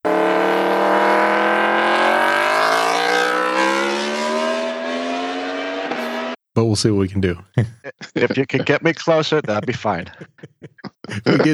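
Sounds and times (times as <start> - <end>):
loud motorcycle exhaust revving: 0.0 - 6.4
speech: 6.6 - 11.5
laughter: 7.6 - 11.5.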